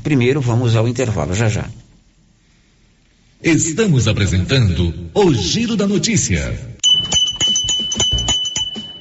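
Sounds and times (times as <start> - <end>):
speech: 0.0 - 1.8, 3.4 - 7.2
doorbell chime ringing: 6.8 - 8.9.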